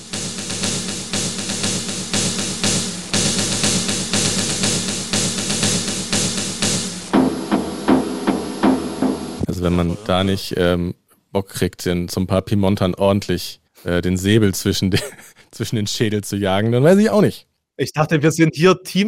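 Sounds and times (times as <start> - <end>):
drum beaten in a steady driving rhythm: 0.0 - 10.3
speech: 9.6 - 19.0
laughter: 14.8 - 15.4.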